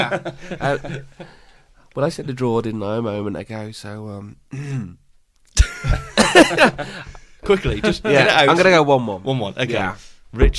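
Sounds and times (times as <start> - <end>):
laughter: 0.0 - 1.2, 5.6 - 8.5
speech: 0.0 - 1.4, 2.0 - 5.0, 5.6 - 10.5
voiced throat clearing: 4.5 - 5.0
harsh raspy coughing: 5.6 - 7.2.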